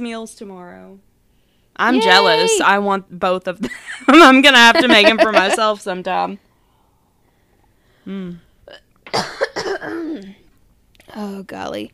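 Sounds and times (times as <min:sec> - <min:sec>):
speech: 0:00.0 - 0:01.1, 0:01.8 - 0:06.5, 0:08.0 - 0:10.4, 0:11.1 - 0:11.9
laughter: 0:04.6 - 0:05.8
person coughing and sputtering: 0:08.7 - 0:10.4.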